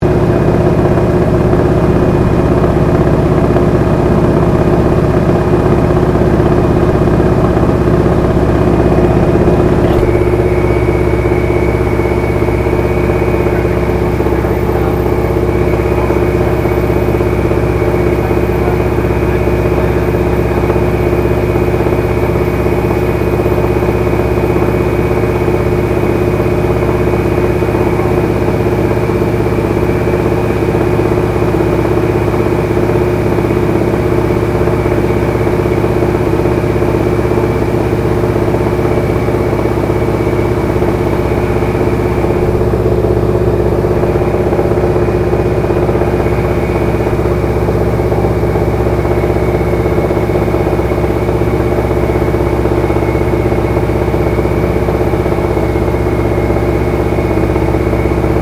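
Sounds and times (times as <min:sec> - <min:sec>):
AT-6D Harvard Mk III training aircraft flying, interior: 0:00.0 - 0:58.4.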